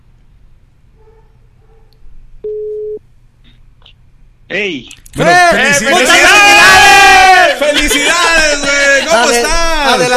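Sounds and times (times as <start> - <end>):
steady mid-pitched telephone tone: 2.5 - 3.0
speech: 4.5 - 6.4, 9.1 - 10.1
laughter: 5.6 - 10.1.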